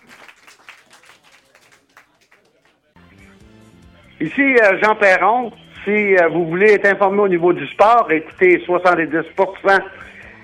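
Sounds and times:
audience applause: 0.0s - 2.9s
speech: 4.2s - 10.0s.

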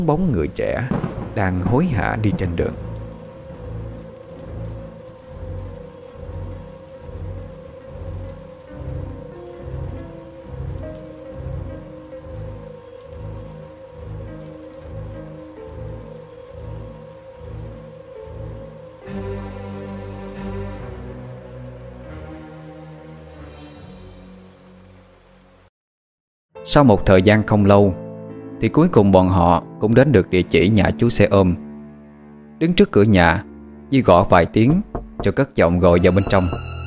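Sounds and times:
speech: 0.0s - 2.9s, 26.7s - 28.0s, 28.6s - 31.6s, 32.6s - 36.7s
heavy thunderstorm rain pouring on a street: 0.0s - 25.7s, 35.3s - 36.8s
deep thunder rumbling: 0.5s - 22.6s.

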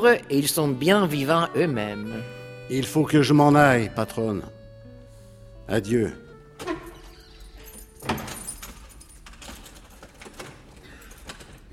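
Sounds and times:
speech: 0.0s - 4.6s, 5.7s - 6.2s
bedroom door closing: 6.2s - 11.7s
soft handling noises: 6.2s - 11.7s
key turning in a door lock: 6.6s - 11.7s.

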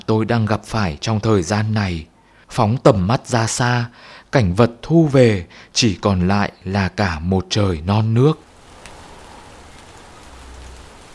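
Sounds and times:
speech: 0.1s - 8.4s
rain falling outside a window: 8.3s - 11.1s.

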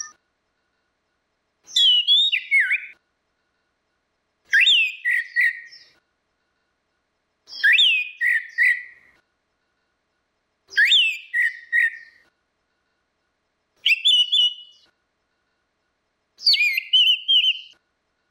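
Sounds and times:
orange-headed thrush singing whistled phrases: 1.7s - 3.0s, 4.5s - 6.0s, 7.5s - 9.2s, 10.7s - 12.3s, 13.8s - 14.9s, 16.4s - 17.8s.

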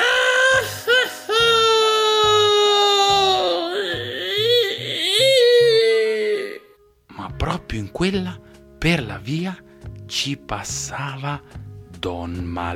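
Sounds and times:
voice imitating a story character sobbing: 0.0s - 6.8s
speech: 7.9s - 12.7s.

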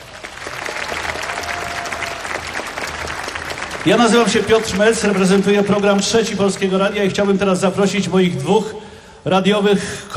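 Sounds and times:
festival audience applause: 0.0s - 7.4s
speech: 3.8s - 10.1s.

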